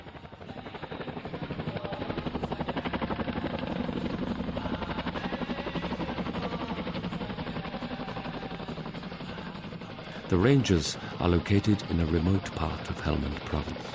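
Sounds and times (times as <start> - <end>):
Chinook helicopter rotor chop while airlifting supplies: 0.0 - 13.9
speech: 10.3 - 13.9.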